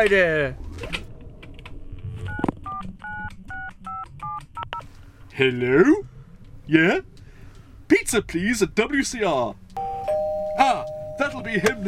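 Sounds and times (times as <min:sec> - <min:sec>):
speech: 0:00.0 - 0:01.0, 0:05.4 - 0:06.1, 0:06.7 - 0:07.2, 0:07.9 - 0:09.6, 0:10.6 - 0:11.8
electronic touch-tone beeps of a phone number being dialed: 0:09.8 - 0:11.8.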